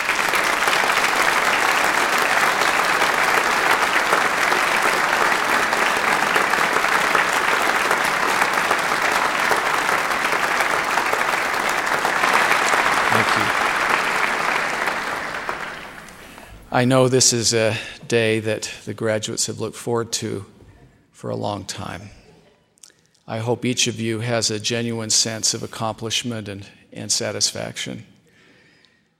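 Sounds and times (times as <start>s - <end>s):
large audience applauding graduates: 0.0s - 16.9s
speech: 16.8s - 20.6s, 21.2s - 22.2s, 23.3s - 28.2s.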